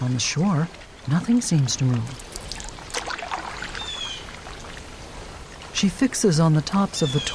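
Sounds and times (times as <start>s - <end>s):
paddle strokes of a small craft splashing through calm water: 0.0s - 5.9s
sharp cold wind: 0.0s - 7.3s
water gurgling and trickling: 0.0s - 7.3s
speech: 0.2s - 2.4s, 5.8s - 7.3s.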